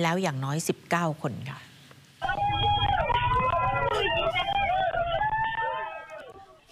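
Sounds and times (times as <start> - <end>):
speech: 0.0 - 2.4
panicked crowd shouting and crying out in market: 2.2 - 6.7.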